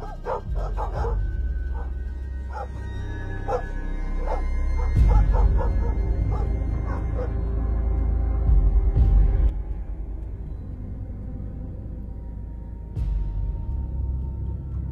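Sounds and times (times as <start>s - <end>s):
dog yelps: 0.0s - 1.9s, 2.5s - 2.8s, 3.5s - 7.4s
dogs barking in short sharp bursts: 0.0s - 7.6s
low rumbling background: 0.0s - 14.9s.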